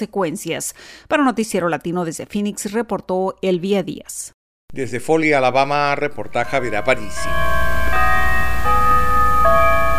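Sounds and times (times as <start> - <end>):
speech: 0.0 - 8.3
church bells ringing for Easter Sunday: 5.9 - 9.9.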